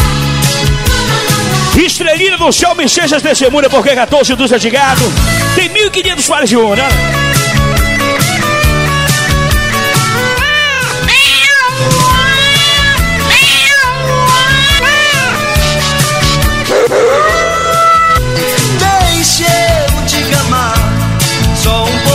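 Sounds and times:
loud band music at a live show: 0.0s - 22.1s
speech: 2.1s - 7.8s
voice imitating cats caterwauling at a live show: 10.2s - 18.2s.

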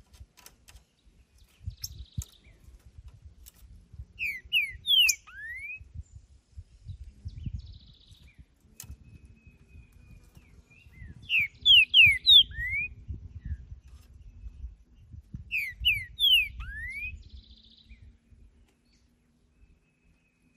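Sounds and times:
wild male Green-winged saltator whistling downslurred song phrases in territorial display: 4.2s - 6.2s, 6.8s - 13.7s, 15.4s - 18.1s.

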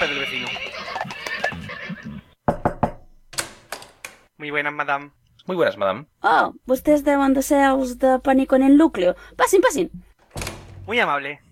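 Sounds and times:
horse whinnying: 0.0s - 2.4s
speech: 4.4s - 10.1s, 10.9s - 11.4s.

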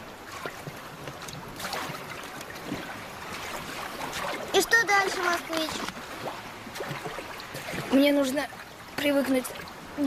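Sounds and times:
rowing boat rocking in water as oars work it, sloshing and splashing: 0.0s - 10.0s
speech: 4.9s - 6.0s, 7.9s - 10.0s.

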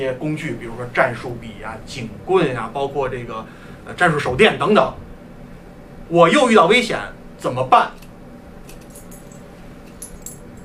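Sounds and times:
speech: 0.0s - 5.0s, 6.1s - 8.0s
bunch of door keys jangling: 8.6s - 10.6s.

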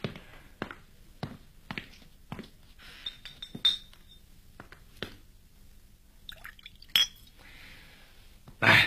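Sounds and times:
glasses clinking in a toast: 3.0s - 4.2s, 6.3s - 7.4s
wine being poured: 6.3s - 7.4s.

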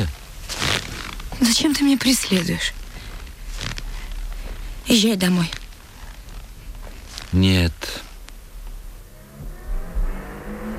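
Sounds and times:
speech: 1.5s - 2.8s, 4.9s - 5.6s, 7.3s - 8.1s
car pulling up and stopping with low rumbling engine: 8.4s - 10.7s.

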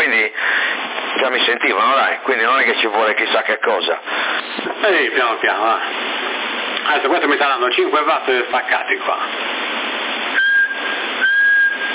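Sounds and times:
constant CB radio hiss: 0.0s - 11.9s
speech: 1.2s - 9.8s
person whistling into a CB radio microphone: 10.4s - 11.9s.

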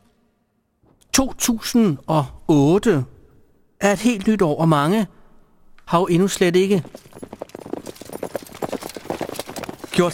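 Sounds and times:
speech: 1.2s - 3.1s, 3.8s - 5.2s, 5.9s - 7.2s, 10.0s - 10.1s
small horse's hooves clip-clopping: 6.3s - 10.1s.

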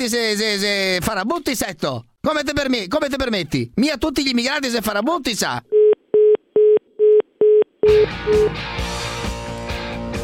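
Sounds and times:
speech: 0.0s - 5.7s, 7.8s - 8.9s
telephone line tones after a caller hangs up on a phone-in call: 5.8s - 8.5s.

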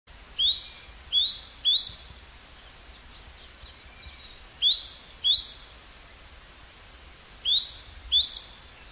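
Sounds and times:
faint background hiss: 0.1s - 8.9s
bird whistled song: 0.4s - 2.2s, 3.1s - 5.7s, 7.4s - 8.9s.

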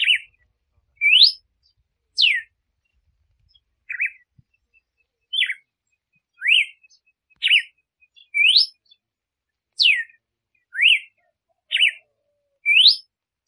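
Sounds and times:
female Red-cowled cardinal singing to stimulate the male: 1.0s - 2.5s, 6.3s - 9.0s, 9.8s - 13.1s.

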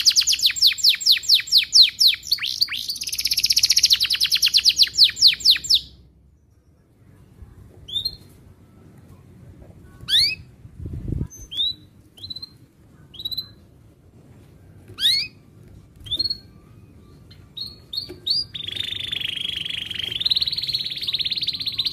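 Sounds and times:
domestic canary trilling and chirping: 0.0s - 6.9s, 10.1s - 10.5s, 11.3s - 13.8s, 14.9s - 21.9s.

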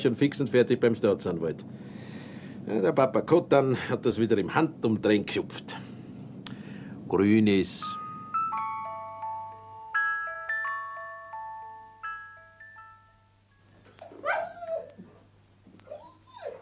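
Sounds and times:
speech: 0.0s - 2.1s, 2.7s - 5.8s, 7.1s - 8.0s
tinkling plucked notes: 7.8s - 13.8s
dog whining and whimpering, wanting to be let out into the yard: 13.7s - 16.6s.

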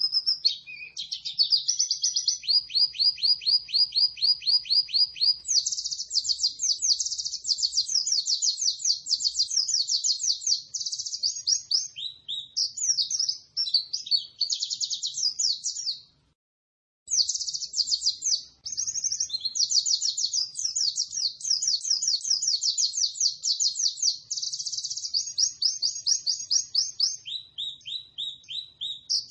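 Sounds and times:
white-eye twittering song: 0.0s - 16.1s, 17.1s - 29.2s.

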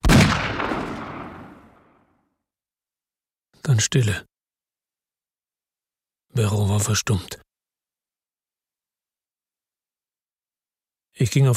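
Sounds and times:
single handgun gunshot beside a boat: 0.0s - 2.1s
speech: 3.7s - 4.3s, 6.4s - 7.5s, 11.2s - 11.5s.

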